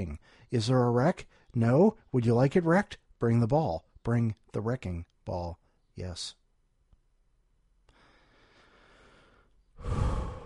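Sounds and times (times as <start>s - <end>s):
speech: 0.0s - 6.4s, 9.8s - 10.0s
deep breathy inhalation: 0.2s - 0.5s, 7.9s - 10.4s.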